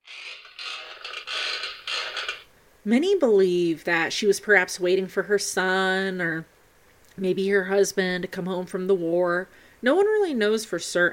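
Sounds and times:
wooden rocking chair creaking: 0.0s - 2.5s
speech: 2.8s - 6.5s, 7.2s - 11.1s.

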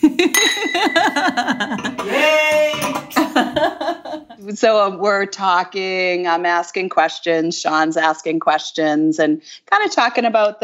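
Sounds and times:
laughter: 0.0s - 4.4s
people's voices: 0.0s - 5.2s
speech: 0.1s - 2.4s, 4.5s - 10.6s
glasses clinking in a toast: 0.3s - 4.4s.

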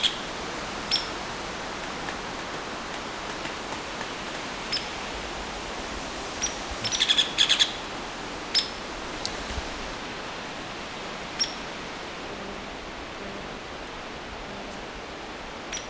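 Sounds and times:
faint steady hiss: 0.0s - 15.8s
Hairy Woodpecker peek calls: 0.9s - 1.2s, 4.7s - 5.0s, 6.4s - 7.8s, 8.5s - 8.8s, 11.4s - 11.7s, 15.7s - 15.8s.

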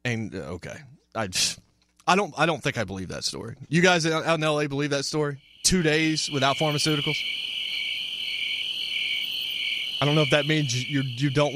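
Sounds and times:
speech: 0.3s - 7.4s, 10.0s - 11.5s
crickets chirping: 4.8s - 11.5s.

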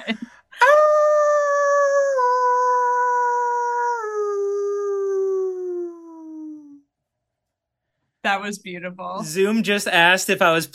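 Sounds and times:
speech: 0.1s - 0.3s, 8.4s - 10.7s
person imitating a wolf howl over a Zoom call in an apartment: 0.6s - 6.8s.

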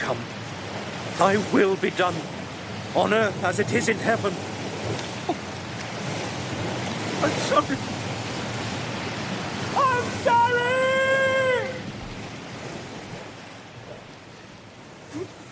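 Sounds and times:
rising sea surf rushing at the end of a cave: 0.0s - 15.5s
speech: 0.1s - 0.4s, 1.2s - 5.4s, 7.2s - 8.0s, 10.0s - 11.0s
short high wailing cry: 9.7s - 11.9s.

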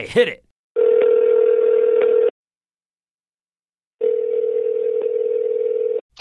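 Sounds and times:
outgoing phone call ringing tone: 0.8s - 2.4s, 4.0s - 6.0s.

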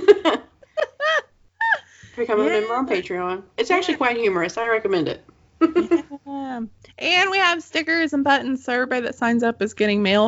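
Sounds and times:
person giving a quick breathy giggle: 0.0s - 2.0s, 5.6s - 6.6s
speech: 2.2s - 10.2s.

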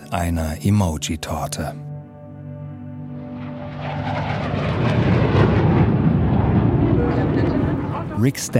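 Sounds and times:
speech: 0.1s - 1.9s, 8.2s - 8.5s
airplane roaring on landing approach: 2.6s - 8.5s.

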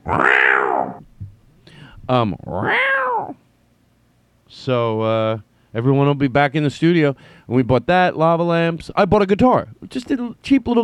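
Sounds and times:
cat meowing: 0.0s - 1.0s, 2.4s - 3.4s
speech: 2.1s - 2.9s, 4.7s - 10.8s.

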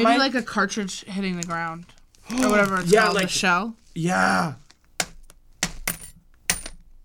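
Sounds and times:
speech: 0.0s - 4.6s
pretzel bag rustling crunches: 2.2s - 3.5s
coins tossed onto a crinkly bag of pretzels: 5.8s - 6.8s.

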